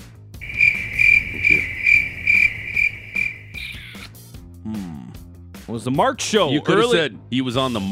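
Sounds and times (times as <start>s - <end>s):
shrill cricket chirping sound effect: 0.4s - 3.9s
speech: 5.7s - 7.8s.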